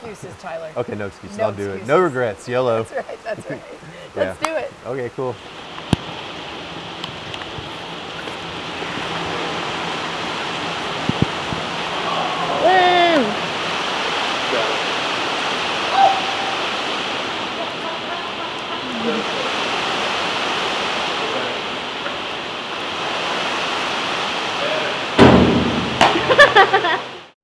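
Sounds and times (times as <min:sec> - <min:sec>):
speech: 0:00.0 - 0:05.6
rain falling outdoors: 0:00.0 - 0:27.4
laughter: 0:17.5 - 0:19.6, 0:26.2 - 0:27.2
loud clatter: 0:25.2 - 0:26.5.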